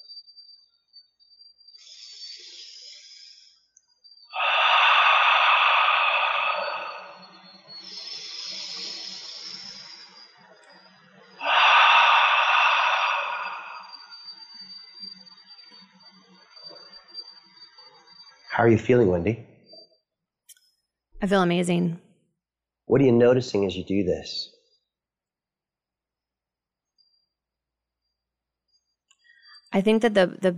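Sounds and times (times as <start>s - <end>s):
slow deep breathing inhaling and exhaling: 1.8s - 3.6s, 4.3s - 9.9s, 11.4s - 14.4s
speech: 18.6s - 19.5s, 21.2s - 22.0s, 22.9s - 24.5s, 29.8s - 30.5s.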